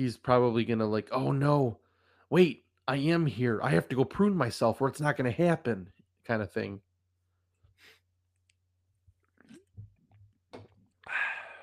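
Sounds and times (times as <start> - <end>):
speech: 0.0 - 6.9
person sipping sparkling wine with wet mouth sounds: 9.2 - 10.0
swallow: 9.2 - 11.6
breathy exhale: 11.0 - 11.6.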